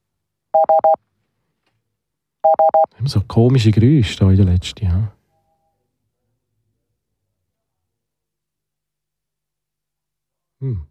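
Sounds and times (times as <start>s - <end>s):
short beeping tones of a telephone number being dialed: 0.6s - 1.0s, 2.4s - 2.9s
speech: 2.5s - 5.2s, 10.6s - 10.9s.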